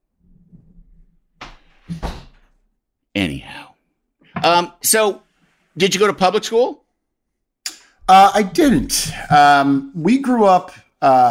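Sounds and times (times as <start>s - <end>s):
door pushed shut with solid thuds: 1.9s - 2.5s
speech: 4.5s - 6.8s, 8.1s - 11.2s.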